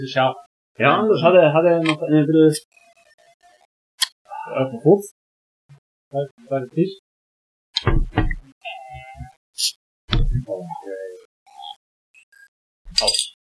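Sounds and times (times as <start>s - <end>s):
speech: 0.0s - 2.8s, 4.5s - 5.2s, 6.1s - 7.0s, 7.8s - 8.3s, 13.0s - 13.4s
dull knocks and thumps: 7.8s - 8.5s, 10.1s - 10.5s
glasses of chili-infused beer clinking in a toast: 12.9s - 13.4s.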